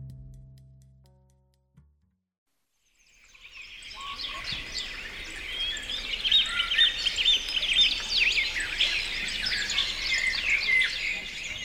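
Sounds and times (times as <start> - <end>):
Carolina wren singing: 2.9 - 11.6.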